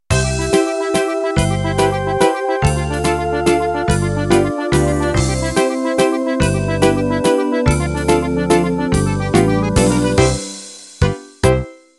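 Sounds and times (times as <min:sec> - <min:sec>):
musette ending: 0:00.1 - 0:10.5.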